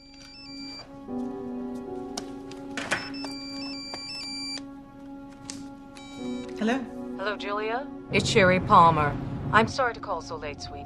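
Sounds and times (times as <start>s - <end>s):
cell phone ringtone melody inside a bag: 0.0s - 0.9s, 2.9s - 4.6s, 6.0s - 6.6s
speech: 6.6s - 10.8s.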